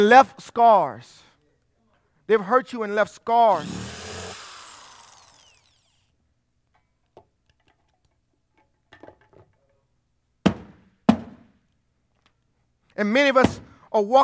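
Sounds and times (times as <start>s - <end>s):
speech: 0.0s - 1.2s, 2.3s - 3.8s, 13.0s - 14.2s
power drill whirring and spinning down: 3.5s - 6.0s.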